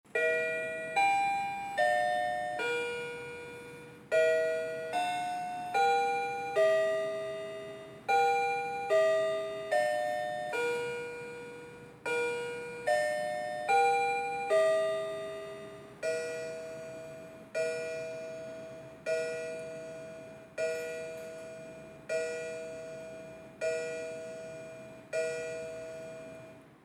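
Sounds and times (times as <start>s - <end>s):
clock striking: 0.1s - 26.7s.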